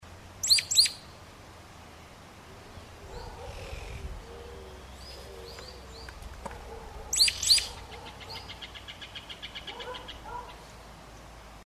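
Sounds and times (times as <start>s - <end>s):
chiguanco thrush singing: 0.4s - 1.2s, 2.0s - 10.6s.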